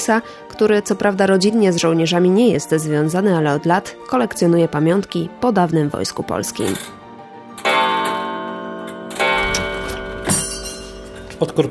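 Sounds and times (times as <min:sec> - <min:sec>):
speech: 0:00.0 - 0:07.0, 0:11.4 - 0:11.6
mantel clock striking: 0:07.6 - 0:11.6.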